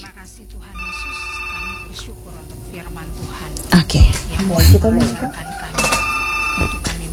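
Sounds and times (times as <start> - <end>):
telephone ringing for an incoming call: 0.8 - 2.1, 5.0 - 7.0
speech: 3.9 - 5.5.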